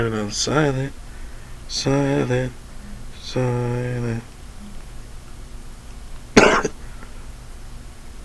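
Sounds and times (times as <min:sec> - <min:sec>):
speech: 0:00.0 - 0:01.0, 0:01.7 - 0:02.6, 0:03.3 - 0:04.3
person coughing: 0:06.4 - 0:06.8.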